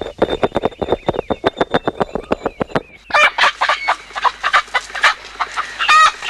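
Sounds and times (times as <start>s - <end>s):
newly bought native country chickens clucking: 0.2s - 6.2s
native country chickens squawking and calling: 3.1s - 6.2s.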